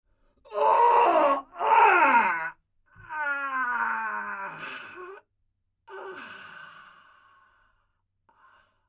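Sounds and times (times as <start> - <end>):
sounds of death and pain: 0.4 - 5.3, 5.9 - 7.2.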